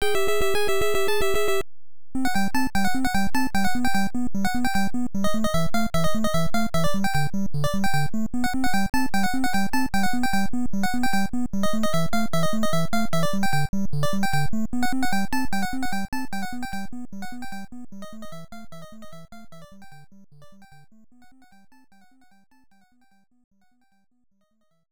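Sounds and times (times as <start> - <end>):
NES chiptune game music: 0.0 - 1.6, 2.2 - 19.6.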